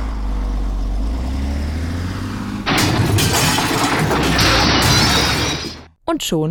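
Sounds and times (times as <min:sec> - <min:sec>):
truck engine rumbling while reversing under throttle: 0:00.0 - 0:05.9
truck crashing through a bank branch's glass front: 0:02.7 - 0:05.9
speech: 0:06.1 - 0:06.4.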